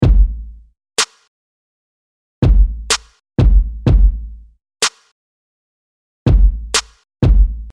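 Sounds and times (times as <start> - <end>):
cajon kick in a trap beat: 0.0 - 0.6, 2.4 - 4.4, 6.3 - 7.7
cajon snare in a trap beat: 1.0 - 1.2, 2.9 - 3.1, 4.8 - 5.0, 6.8 - 7.4.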